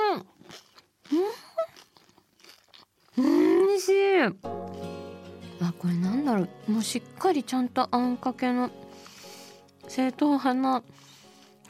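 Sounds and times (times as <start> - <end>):
crunchy bites into a small thin golden-brown fried spring roll: 0.2 - 3.3
chewing: 0.2 - 3.8, 11.0 - 11.6
speech: 3.9 - 4.6, 5.8 - 8.8, 9.9 - 11.1.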